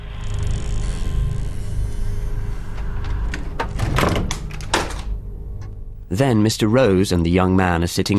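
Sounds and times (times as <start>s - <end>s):
steady low rumble of room or engine noise: 0.0s - 7.5s
door pushed shut: 0.3s - 5.8s
speech: 6.1s - 8.1s.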